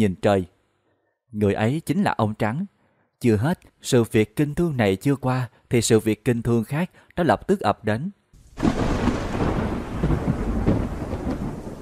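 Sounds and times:
speech: 0:00.0 - 0:00.5, 0:01.3 - 0:09.2
heavy thunder crashing and rumbling: 0:08.4 - 0:11.7.

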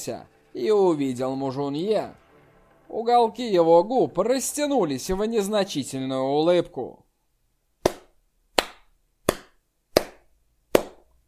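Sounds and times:
speech: 0:00.0 - 0:02.2, 0:02.9 - 0:07.0
person clapping hands in a main hall: 0:07.9 - 0:11.1.

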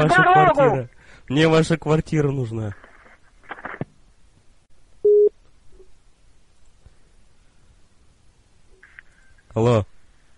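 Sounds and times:
speech: 0:00.0 - 0:02.8, 0:09.6 - 0:09.9
quiet telephone line noise: 0:00.0 - 0:10.3
telephone busy tone after a call is hung up: 0:05.1 - 0:05.3.

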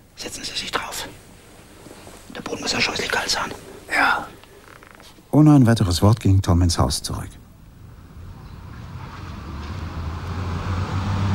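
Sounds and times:
speech: 0:00.2 - 0:01.3, 0:02.6 - 0:04.4, 0:05.3 - 0:07.4
car engine and road rumble driving past a house and stopping: 0:07.7 - 0:11.3.

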